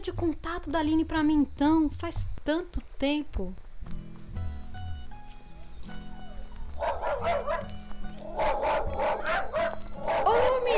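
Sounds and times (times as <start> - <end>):
speech: 0.0 - 4.0
dog barking: 6.8 - 10.7.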